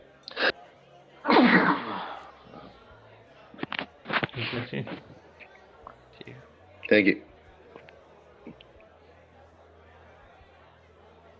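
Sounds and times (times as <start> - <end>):
person sneezing: 1.3 - 2.1
speech: 4.5 - 5.2, 6.9 - 7.3.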